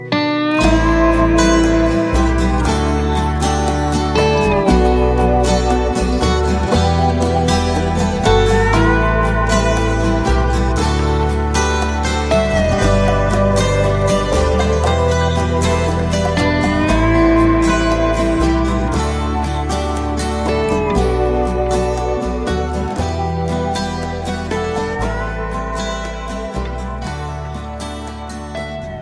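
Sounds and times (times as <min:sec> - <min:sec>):
guitar solo in electronica music: 0:00.0 - 0:29.0.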